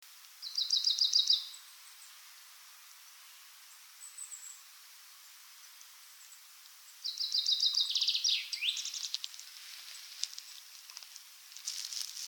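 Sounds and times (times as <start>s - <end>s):
common chaffinch Fringilla coelebs song: 0.4s - 2.2s, 6.2s - 9.2s.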